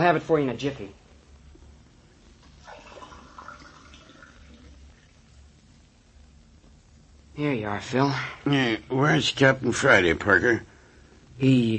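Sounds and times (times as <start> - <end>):
speech: 0.0 - 1.0, 7.4 - 10.7, 11.4 - 11.7
low hum: 0.0 - 11.7
water running from a tap for drinking: 2.6 - 5.0.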